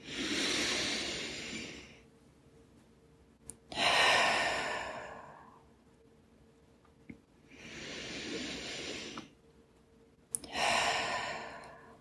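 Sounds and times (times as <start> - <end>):
slow deep breaths during a guided meditation: 0.0 - 2.1, 3.7 - 5.8, 7.4 - 9.4, 10.4 - 11.9.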